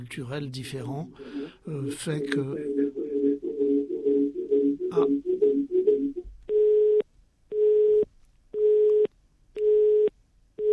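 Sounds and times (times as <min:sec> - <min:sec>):
speech: 0:00.0 - 0:02.9, 0:05.0 - 0:05.3
telephone busy signal: 0:03.6 - 0:07.0, 0:08.6 - 0:10.7.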